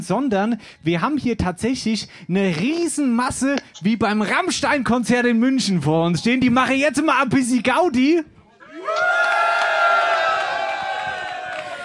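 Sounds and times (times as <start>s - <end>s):
speech: 0.0s - 8.3s
large live audience cheering and whooping: 8.6s - 11.8s.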